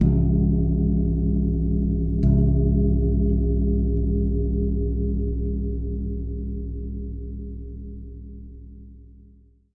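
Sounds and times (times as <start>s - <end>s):
longevity gong multi hit: 0.0s - 7.4s.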